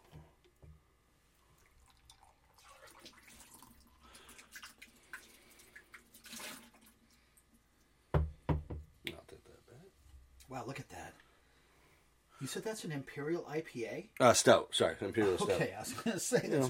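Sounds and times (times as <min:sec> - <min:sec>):
water running from a tap: 0:01.8 - 0:06.9
knock: 0:08.1 - 0:08.9
speech: 0:10.5 - 0:11.2, 0:12.4 - 0:16.6.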